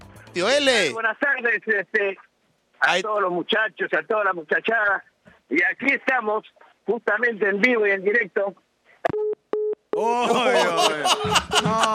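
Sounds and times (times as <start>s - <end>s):
speech: 0.4s - 9.4s, 10.0s - 11.9s
phone busy tone beeps after a hung-up call: 9.1s - 9.8s
loud laughter: 10.1s - 11.9s.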